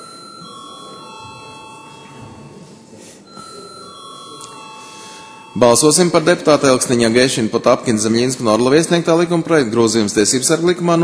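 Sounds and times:
continuous parliament chamber electric bell ringing: 0:00.0 - 0:02.7, 0:03.3 - 0:06.3
speech: 0:05.6 - 0:11.0.

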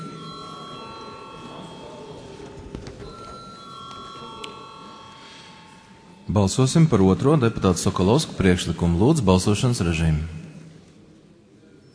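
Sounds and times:
parliament chamber electric bell ringing before a vote: 0:00.0 - 0:08.8
low murmur of room noise: 0:00.0 - 0:11.9
speech: 0:06.3 - 0:10.4.

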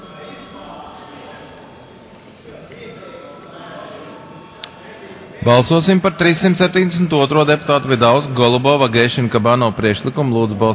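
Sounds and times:
parliament voting call electric bell ringing: 0:00.0 - 0:06.3
murmur of many people in a parliament: 0:00.0 - 0:10.7
speech: 0:05.4 - 0:10.7.

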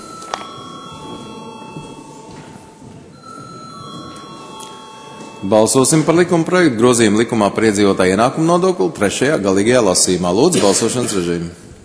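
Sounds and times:
parliamentary voting bell ringing with a steady electronic tone: 0:00.0 - 0:08.8
low murmuring room noise: 0:00.0 - 0:11.8
speech: 0:05.4 - 0:11.7.

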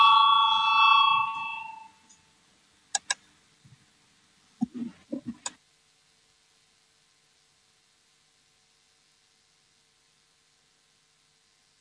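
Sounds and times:
parliamentary voting electric bell ringing: 0:00.0 - 0:02.0
sharp clicks: 0:02.9 - 0:03.2.

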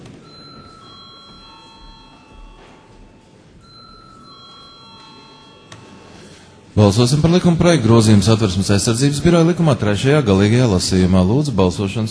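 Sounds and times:
parliamentary chamber electric bell ringing before vote: 0:00.1 - 0:09.2
speech: 0:06.8 - 0:12.0.

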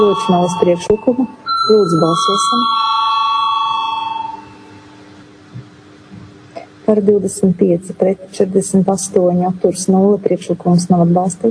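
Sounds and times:
electric bell ringing in a parliamentary chamber before a vote: 0:00.0 - 0:05.1
speech: 0:00.1 - 0:02.8, 0:06.9 - 0:11.5.

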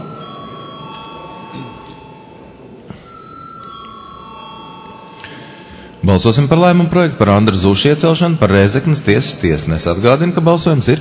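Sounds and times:
parliament voting bell ringing with a sustained metallic electric tone: 0:00.0 - 0:06.1
low murmur of room noise: 0:00.0 - 0:10.9
speech: 0:01.5 - 0:02.0, 0:06.0 - 0:10.9.

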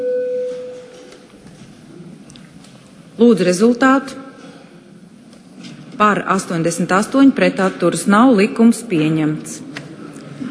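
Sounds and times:
parliamentary call bell electronic signal tone before a vote: 0:00.0 - 0:01.0
speech: 0:03.2 - 0:04.2, 0:06.0 - 0:09.7.

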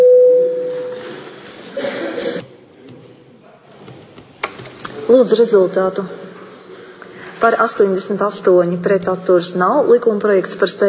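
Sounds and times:
parliament voting bell electronic tone: 0:00.0 - 0:01.0
hushed murmur of a large chamber: 0:00.9 - 0:10.8
speech: 0:05.1 - 0:06.2, 0:07.4 - 0:10.8.

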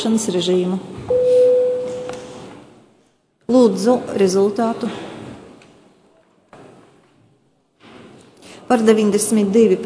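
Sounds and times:
speech: 0:00.0 - 0:01.4, 0:03.5 - 0:05.1, 0:08.7 - 0:09.8
parliamentary voting bell electronic tone: 0:01.1 - 0:02.3.

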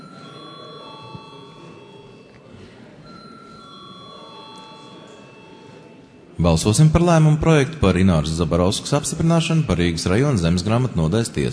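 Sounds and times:
parliament chamber electric bell ringing to call members to a vote: 0:00.0 - 0:02.3, 0:03.0 - 0:06.0
faint murmuring voices in a parliament chamber: 0:00.0 - 0:11.5
speech: 0:06.4 - 0:11.5.

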